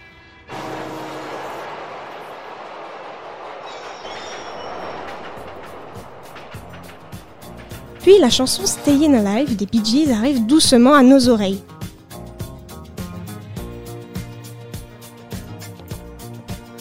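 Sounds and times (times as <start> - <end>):
New York City subway train roaring: 0.0 - 11.5
dense city traffic rumble of cars in New York City: 0.5 - 11.6
speech: 8.1 - 11.7.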